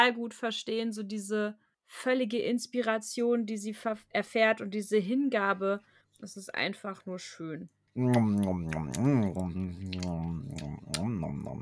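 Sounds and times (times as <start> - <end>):
speech: 0.0 - 11.6
voiced humming or murmuring: 8.0 - 11.6
wet lips smacking while eating: 8.0 - 11.6.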